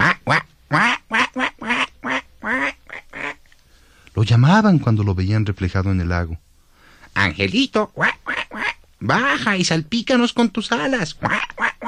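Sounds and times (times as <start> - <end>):
ducks quacking harshly: 0.0 - 3.4, 7.2 - 9.6, 10.7 - 11.8
speech: 4.2 - 6.5, 7.2 - 8.2, 9.0 - 11.5.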